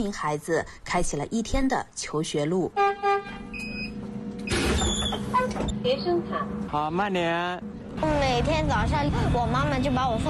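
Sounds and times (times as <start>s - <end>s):
speech: 0.0s - 3.4s, 5.6s - 10.2s
bus engine rumbling on a winding mountain road: 2.1s - 10.2s
bus horn toots: 2.8s - 3.8s.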